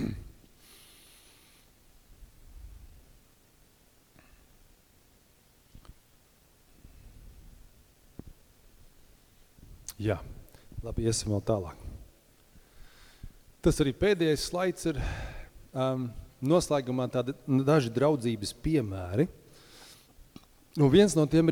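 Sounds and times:
coughing: 0:00.0 - 0:00.5
throat clearing: 0:00.0 - 0:00.5
speech: 0:10.0 - 0:11.9, 0:13.6 - 0:19.4, 0:20.8 - 0:21.5.

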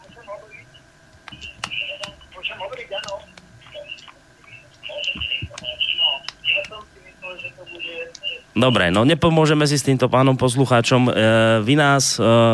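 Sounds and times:
tinny telephone-line voices of a radio call-in listener: 0:00.0 - 0:09.0
radio broadcast echoing back over the telephone line: 0:00.0 - 0:09.4
speech: 0:08.6 - 0:12.5.

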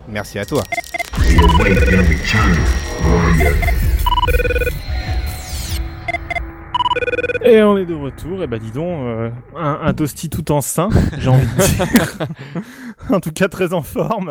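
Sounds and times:
speech: 0:00.1 - 0:04.6, 0:07.5 - 0:14.2
TV-series office phone ringtone used as a mobile phone ringtone: 0:00.7 - 0:05.0, 0:06.0 - 0:07.5
laughter: 0:10.9 - 0:12.8.

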